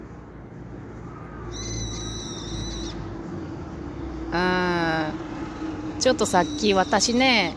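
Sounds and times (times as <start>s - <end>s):
steady outdoor rumble of noise: 0.0s - 7.5s
brown-eared bulbul giving a shrill drawn-out call: 1.5s - 3.0s, 6.2s - 7.5s
speech: 4.3s - 4.6s, 6.0s - 7.5s.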